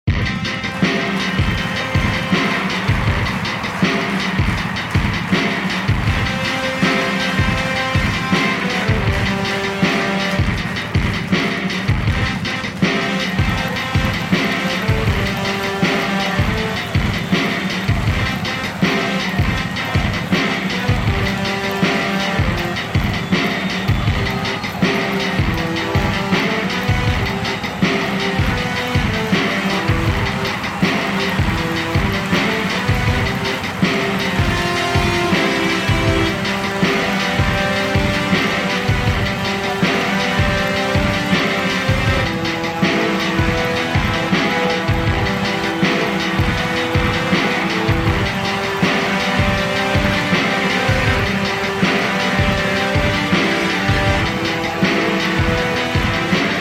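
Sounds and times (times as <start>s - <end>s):
marching band playing live: 0.0s - 56.6s.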